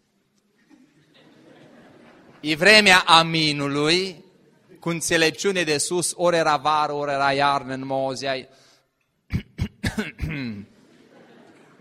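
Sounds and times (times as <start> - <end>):
laughter: 0.6 - 2.5, 10.7 - 11.7
speech: 2.4 - 4.2, 4.8 - 8.6, 10.0 - 10.7
sharp coughs with a rough voiced hack: 9.3 - 10.8.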